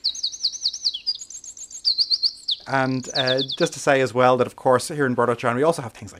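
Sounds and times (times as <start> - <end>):
wren singing: 0.0 - 4.4
speech: 2.7 - 6.1.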